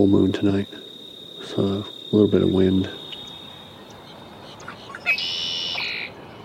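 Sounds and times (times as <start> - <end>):
speech: 0.0 - 0.8, 1.4 - 3.0
soft steady hiss: 0.0 - 6.4
red-winged blackbird call with buzzy trill in a wetland: 3.1 - 6.1.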